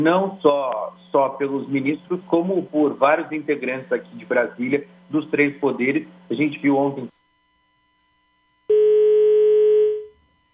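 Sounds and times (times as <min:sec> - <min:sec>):
speech: 0:00.0 - 0:07.2
telephone line tone after a dropped call: 0:08.0 - 0:10.5.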